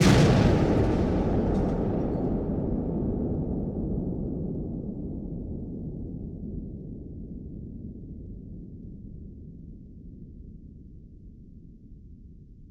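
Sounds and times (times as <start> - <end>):
WWII explosion with long trail: 0.0 - 6.0.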